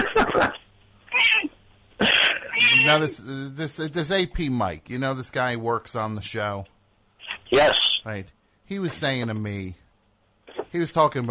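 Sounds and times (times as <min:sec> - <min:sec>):
cat meowing: 0:01.1 - 0:01.5, 0:02.5 - 0:03.2
speech: 0:02.9 - 0:06.7, 0:07.5 - 0:09.8, 0:10.7 - 0:11.2.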